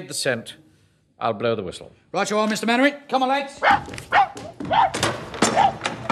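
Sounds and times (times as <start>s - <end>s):
speech: 0.0s - 0.6s, 1.2s - 5.7s
dog barking in a platoon setting: 3.6s - 5.8s.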